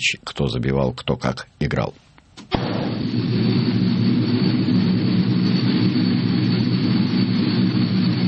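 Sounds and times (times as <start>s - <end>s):
speech: 0.0s - 3.2s
propeller airplane engines roaring on arrival: 3.0s - 8.2s.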